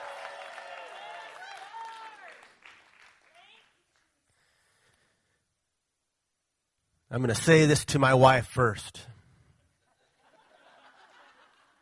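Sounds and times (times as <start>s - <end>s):
audience cheering with overlapping voices: 0.0s - 2.6s
audience applause: 0.0s - 3.6s
speech: 7.1s - 9.1s
laughter: 9.8s - 11.8s.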